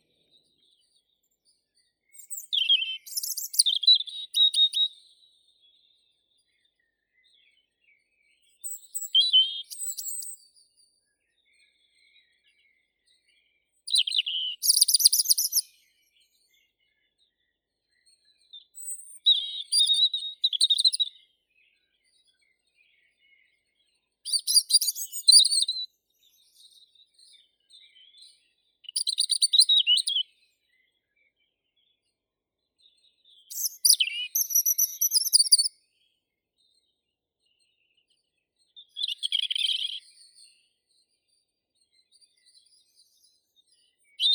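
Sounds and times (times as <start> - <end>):
European robin Erithacus rubecula singing: 0.0 - 10.8, 13.8 - 17.4, 18.2 - 32.1, 32.8 - 36.1, 38.7 - 40.6, 42.2 - 44.3.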